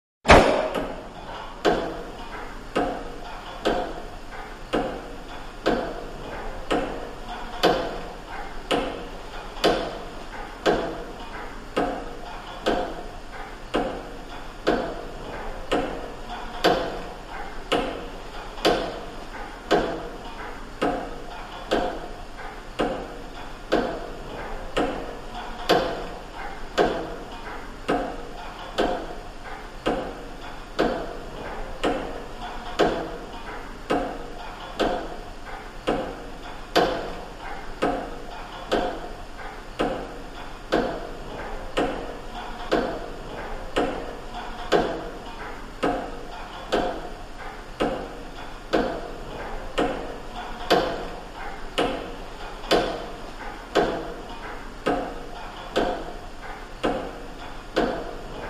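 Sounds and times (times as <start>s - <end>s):
ticks in a large reverberant room: 0.3s - 58.4s.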